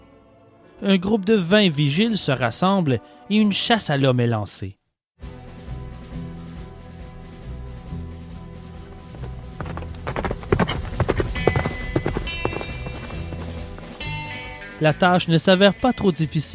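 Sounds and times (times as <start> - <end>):
speech: 0.8 - 5.3, 14.8 - 16.5
horses' hooves clip-clopping: 9.0 - 14.5.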